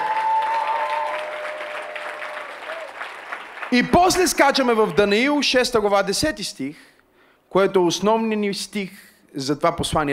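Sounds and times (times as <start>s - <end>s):
audience applauding: 0.0s - 5.4s
speech: 3.7s - 6.9s, 7.5s - 10.1s.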